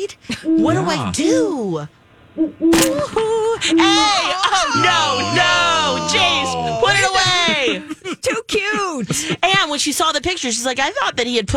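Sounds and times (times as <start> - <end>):
speech: 0.0 - 11.5
laughter: 0.3 - 1.4, 3.1 - 9.8
owl hooting: 0.4 - 1.5, 2.4 - 7.3.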